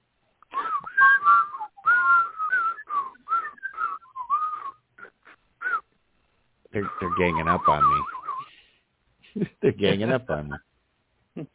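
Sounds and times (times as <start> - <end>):
person whistling a lively warbling tune: 0.5 - 5.8, 6.8 - 8.6
speech: 6.8 - 8.2, 9.4 - 10.7, 11.4 - 11.5.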